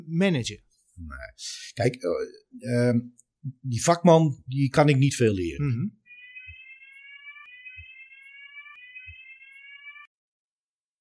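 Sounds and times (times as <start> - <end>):
speech: 0.1 - 6.0
fire alarm blaring with a rising electronic tone: 6.0 - 10.1.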